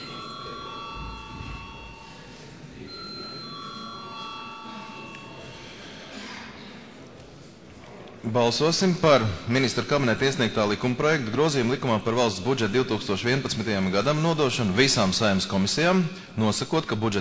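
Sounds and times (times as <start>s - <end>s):
electric bell of a parliament chamber ringing before a vote: 0.0s - 5.8s
people talking quietly in a large parliament chamber: 0.0s - 17.1s
speech: 8.2s - 17.1s.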